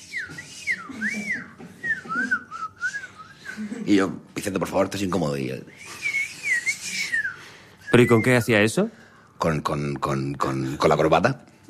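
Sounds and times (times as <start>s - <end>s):
person whistling a short tune: 0.0s - 3.6s, 5.7s - 8.4s
speech: 3.9s - 6.0s, 7.9s - 11.4s.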